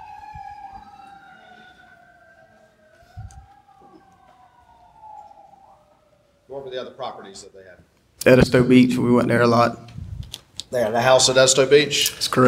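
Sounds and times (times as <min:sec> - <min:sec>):
emergency vehicle sirens wailing: 0:00.0 - 0:07.6
speech: 0:06.5 - 0:09.9, 0:10.7 - 0:12.4.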